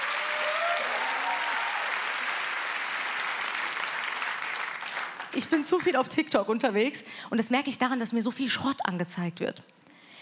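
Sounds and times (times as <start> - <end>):
sustained audience applause: 0.0 - 5.4
speech: 5.3 - 9.8.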